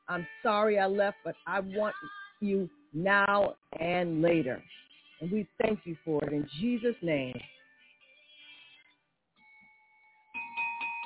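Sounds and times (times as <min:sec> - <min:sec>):
speech: 0:00.1 - 0:07.5
bell ringing: 0:09.4 - 0:11.0.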